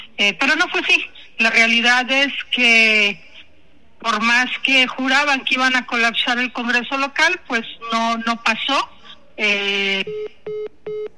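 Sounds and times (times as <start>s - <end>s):
speech: 0.2s - 3.2s, 4.0s - 10.6s
long buzzy harmonic-rich telephone line tone as a call drops: 10.0s - 11.1s.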